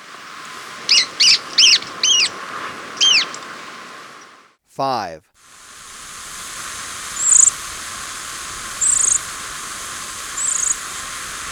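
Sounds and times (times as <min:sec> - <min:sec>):
steady background hiss: 0:00.0 - 0:11.5
stout-billed cinclodes harsh arched notes in Ecuador: 0:00.9 - 0:02.3
speech: 0:04.8 - 0:05.3.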